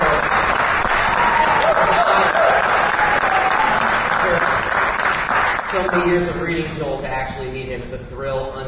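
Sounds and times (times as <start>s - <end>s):
audience applauding a speaker at an event: 0.0s - 6.5s
speech: 6.0s - 8.6s.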